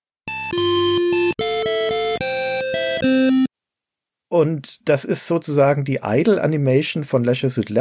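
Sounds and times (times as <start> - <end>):
short bright video game fanfare jingle of stepped synth chords: 0.3 - 3.5
speech: 4.3 - 7.8.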